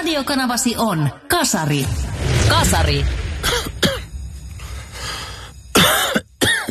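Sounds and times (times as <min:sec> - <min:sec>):
speech: 0:00.2 - 0:03.2
person coughing in harsh dry bursts: 0:03.4 - 0:04.1, 0:05.7 - 0:06.6.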